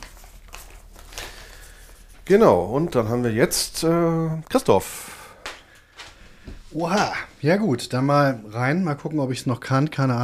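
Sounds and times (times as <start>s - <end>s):
paper lot slips rustling as someone leafs through them: 0.0s - 4.7s
speech: 2.3s - 5.2s, 6.8s - 10.2s.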